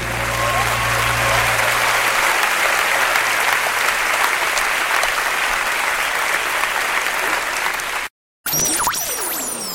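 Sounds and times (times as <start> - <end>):
crowd applauding: 0.0 - 8.1.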